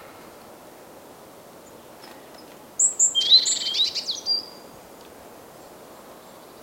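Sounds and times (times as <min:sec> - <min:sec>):
faint steady background hiss: 0:00.0 - 0:06.6
great tit Parus major calls: 0:02.4 - 0:04.6.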